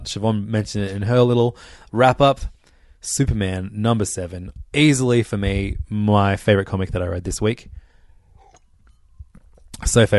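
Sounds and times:
speech: 0.0s - 7.8s, 9.8s - 10.1s
person sipping water: 8.3s - 9.8s.

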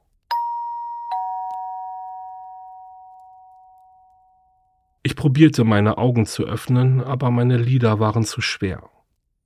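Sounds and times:
doorbell at a home's front door chiming ding-dong: 0.3s - 4.8s
speech: 5.2s - 8.9s.

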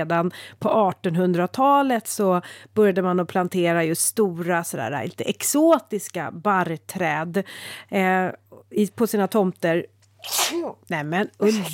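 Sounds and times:
speech: 0.0s - 11.7s
sneeze: 10.2s - 10.8s.

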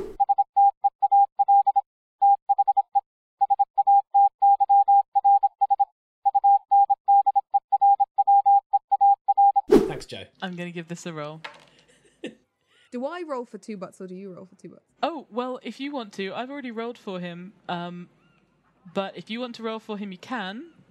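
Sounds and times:
steady clear Morse code tone beeps: 0.0s - 9.6s
speech: 10.0s - 11.6s, 12.9s - 18.2s, 18.9s - 20.8s.

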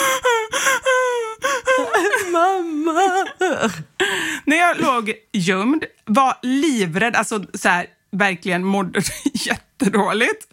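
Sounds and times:
voice imitating crying wail: 0.0s - 4.0s
speech: 3.6s - 3.9s, 4.5s - 10.5s
short breaths: 4.0s - 4.5s.

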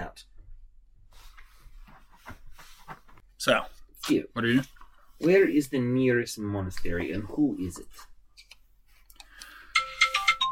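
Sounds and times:
speech: 3.4s - 8.1s
phone ringtone electronic melody: 9.7s - 10.5s.

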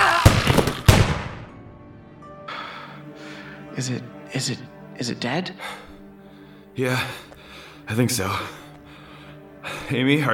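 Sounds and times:
gunshots from a fired barrel: 0.2s - 1.5s
speech: 3.8s - 5.9s, 6.8s - 7.3s, 7.9s - 8.6s, 9.6s - 10.3s.

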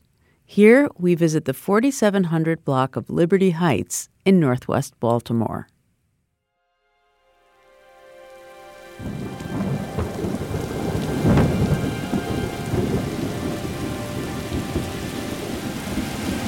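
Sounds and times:
speech: 0.5s - 5.7s
heavy rain on a city street in northwest Baltimore: 8.2s - 16.4s
low rumble of thunder: 9.0s - 16.4s.

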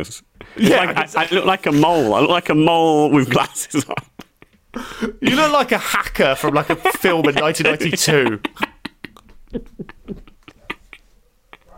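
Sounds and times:
speech: 0.0s - 4.1s, 4.7s - 8.6s, 9.5s - 10.3s
laughter: 0.4s - 2.3s, 3.2s - 11.7s
pet dog barking: 11.2s - 11.7s.

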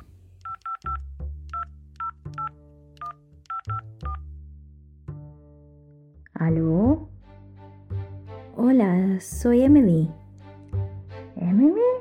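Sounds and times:
touch-tone beeps of phone number dialed on keypad: 0.4s - 4.2s
speech: 6.4s - 7.0s, 8.8s - 10.2s.

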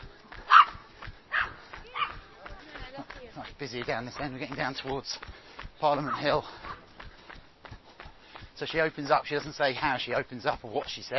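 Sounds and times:
low murmur of outdoor noise: 0.0s - 11.1s
dog barking in a park on Hampstead Heath: 0.5s - 2.2s, 6.1s - 6.8s
speech: 3.4s - 6.7s, 8.6s - 11.1s.

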